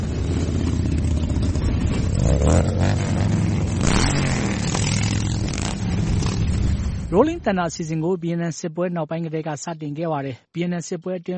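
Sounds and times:
huge crowd of motorcycles riding through Washington, D.C. at a veterans' memorial ride: 0:00.0 - 0:07.8
speech: 0:07.1 - 0:11.3.

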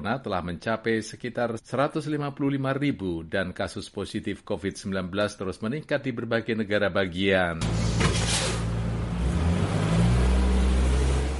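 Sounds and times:
speech: 0:00.0 - 0:08.6
school bus engine idling and revving as it pulls away from a curb: 0:07.6 - 0:11.3.

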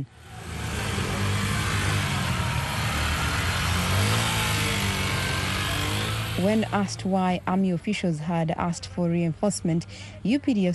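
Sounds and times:
police motorcycle engines revving: 0:00.0 - 0:09.7
speech: 0:06.4 - 0:10.7.

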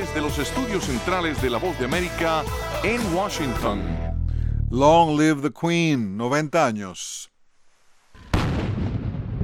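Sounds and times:
speech: 0:00.1 - 0:04.0, 0:04.7 - 0:07.3
cannon blast from a 90-gun salute: 0:08.2 - 0:09.4.

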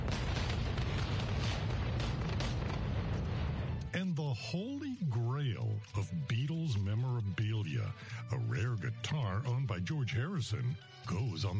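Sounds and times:
massive explosions near an airport: 0:00.0 - 0:04.8
speech: 0:04.0 - 0:11.5.

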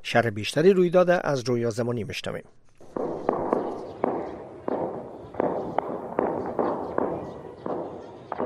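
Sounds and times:
speech: 0:00.1 - 0:02.7
explosions during an armed attack at the Interior Ministry building in Afghanistan: 0:03.0 - 0:08.4.

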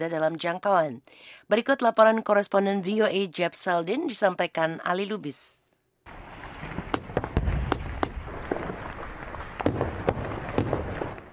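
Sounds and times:
speech: 0:00.0 - 0:06.2
heavy artillery explosions rumbling: 0:06.1 - 0:11.3
rapid irregular gunfire: 0:06.4 - 0:11.3.

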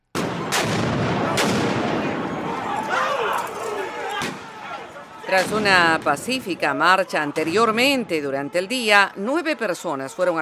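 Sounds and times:
fireworks set off by protesters exploding: 0:00.0 - 0:02.9, 0:05.3 - 0:08.0
roar of outdoor protest crowd: 0:00.0 - 0:10.3
protesters shouting outdoors: 0:00.3 - 0:10.3
speech: 0:05.3 - 0:10.3.

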